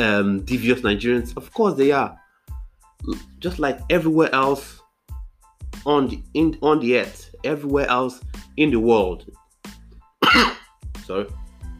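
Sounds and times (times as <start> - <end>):
speech: 0.0 - 2.2, 3.0 - 4.8, 5.8 - 9.4, 10.3 - 11.4
throat clearing: 10.2 - 10.6
short cough: 10.2 - 10.7.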